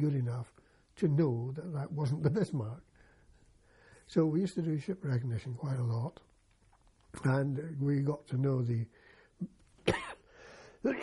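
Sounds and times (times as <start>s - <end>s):
speech: 0.0s - 2.9s, 4.1s - 6.3s, 7.1s - 10.0s, 10.8s - 11.0s
person clearing throat: 9.8s - 10.3s
person coughing: 9.8s - 10.3s.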